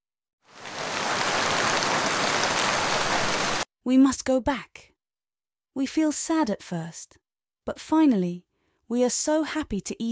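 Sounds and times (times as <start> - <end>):
heavy rain downpour: 0.5 - 3.6
speech: 3.8 - 4.9, 5.8 - 10.1.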